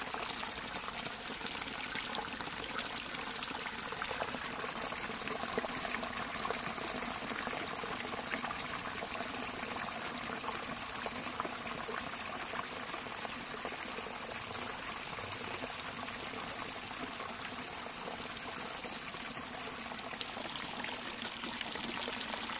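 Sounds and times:
stream flowing through nature in Finland: 0:00.0 - 0:22.5.

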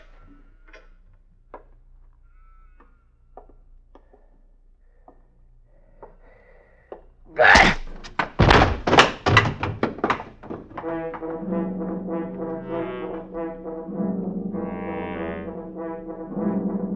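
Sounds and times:
heavy dull bludgeoning blows: 0:07.5 - 0:16.9
sustained low ominous tonal drone: 0:11.2 - 0:16.9.

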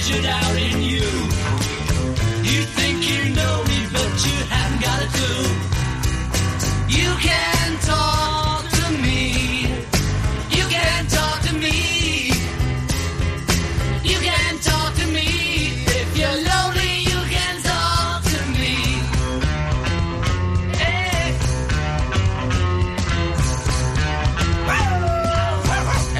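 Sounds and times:
speech: 0:00.0 - 0:01.8
loud dense full band music: 0:00.0 - 0:26.1
dog barking and yipping: 0:25.6 - 0:26.1.

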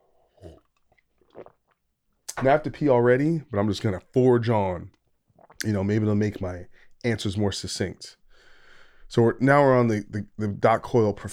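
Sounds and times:
person sipping coffee: 0:00.0 - 0:02.6, 0:05.4 - 0:06.9
swallow: 0:00.0 - 0:02.7, 0:05.4 - 0:06.8
small wet mouth clicks: 0:00.4 - 0:02.5, 0:05.4 - 0:05.7
speech: 0:02.4 - 0:05.0, 0:05.6 - 0:08.2, 0:09.1 - 0:11.3.

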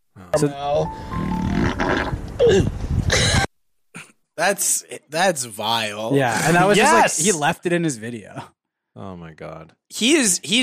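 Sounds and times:
speech: 0:00.4 - 0:03.4, 0:04.4 - 0:10.6
fart played from a video: 0:01.3 - 0:02.2.

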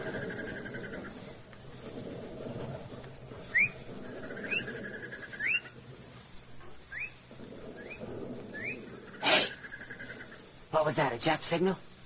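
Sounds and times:
low steady outdoor rumble: 0:00.0 - 0:12.0
bird mating call: 0:03.5 - 0:05.8, 0:06.9 - 0:10.3
speech: 0:10.8 - 0:11.9.

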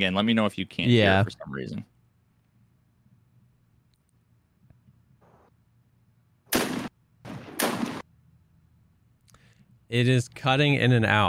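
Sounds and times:
speech: 0:00.0 - 0:01.9, 0:09.9 - 0:11.2
gunfire from a gun in a video game: 0:06.5 - 0:08.0.

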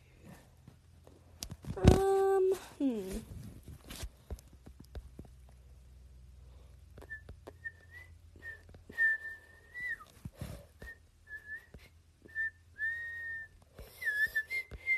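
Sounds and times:
low steady hum: 0:00.0 - 0:14.9
person whistling a wandering tune: 0:07.0 - 0:10.2, 0:10.8 - 0:14.9.

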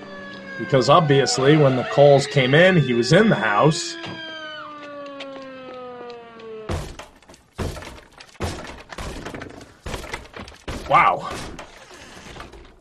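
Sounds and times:
speech: 0:00.6 - 0:04.3
door being smashed open with splintering cracks: 0:06.7 - 0:12.8.

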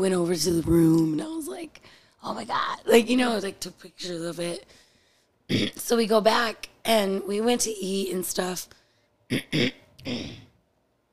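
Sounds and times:
speech: 0:00.0 - 0:04.8, 0:05.5 - 0:10.4
person clearing throat: 0:05.5 - 0:05.8, 0:09.3 - 0:10.5.

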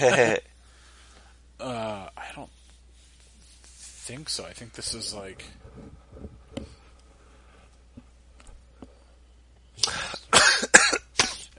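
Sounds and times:
speech: 0:00.0 - 0:00.5, 0:04.1 - 0:06.0
harsh loud coughs from someone laughing: 0:09.8 - 0:11.5.

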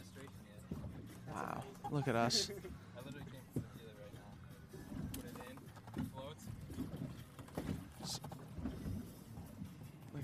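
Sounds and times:
boat rumbling on a lake: 0:00.0 - 0:10.2
speech: 0:01.3 - 0:03.2
hollow knocks against a boat hull: 0:04.8 - 0:09.6.

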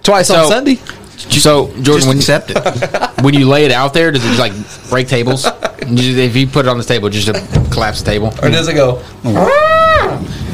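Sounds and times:
speech: 0:00.1 - 0:09.8
laughter: 0:02.2 - 0:06.2
person's voice imitating an elephant trumpeting: 0:09.3 - 0:10.3.

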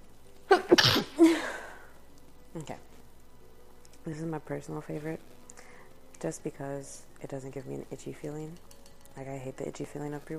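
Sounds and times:
person sneezing: 0:00.5 - 0:01.7
speech: 0:02.6 - 0:02.9, 0:04.0 - 0:05.4, 0:06.2 - 0:10.3.

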